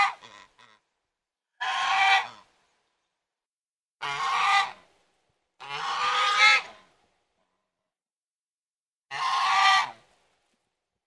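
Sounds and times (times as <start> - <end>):
domestic goose honking: 0.0 - 0.8, 1.6 - 2.5, 4.0 - 4.8, 5.6 - 6.8, 9.1 - 10.0.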